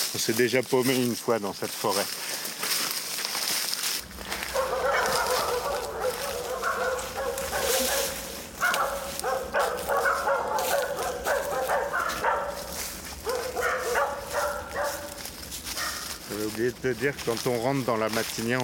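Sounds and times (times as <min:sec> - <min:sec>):
speech: 0:00.2 - 0:02.3, 0:16.9 - 0:18.6
pack of dogs barking and yipping: 0:04.0 - 0:16.6.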